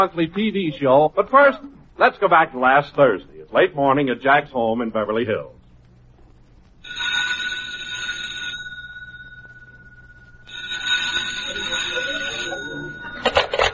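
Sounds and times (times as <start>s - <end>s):
speech: 0.0s - 5.6s
old-fashioned telephone bell ringing in a home in Beverly Hills: 6.8s - 13.7s.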